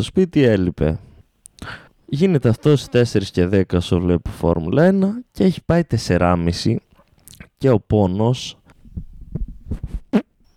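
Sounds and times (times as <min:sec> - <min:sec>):
speech: 0:00.0 - 0:06.9, 0:07.6 - 0:08.6
fart: 0:09.9 - 0:10.4.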